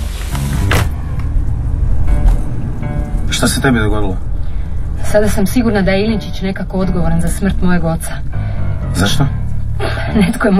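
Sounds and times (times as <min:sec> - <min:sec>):
person getting into a car: 0:00.0 - 0:03.6
steady low rumble: 0:00.0 - 0:10.5
speech: 0:03.4 - 0:04.3, 0:05.1 - 0:09.4, 0:10.1 - 0:10.5.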